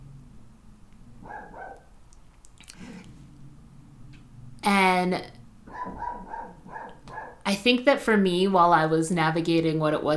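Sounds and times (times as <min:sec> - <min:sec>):
low steady room hum: 0:00.0 - 0:10.1
dog barking: 0:01.2 - 0:01.9, 0:05.7 - 0:07.4
speech: 0:04.7 - 0:05.4, 0:07.5 - 0:10.1.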